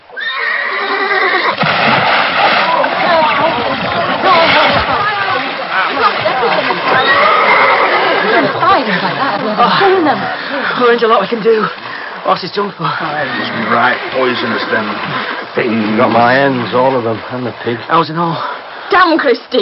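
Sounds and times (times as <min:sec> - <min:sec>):
horse whinnying loudly after flinging itself into a pond: 0:00.1 - 0:01.6, 0:06.9 - 0:08.7, 0:15.6 - 0:16.5
water splashing around a horse in a pond: 0:00.9 - 0:19.6
laughter: 0:02.7 - 0:10.8
speech: 0:10.8 - 0:19.6.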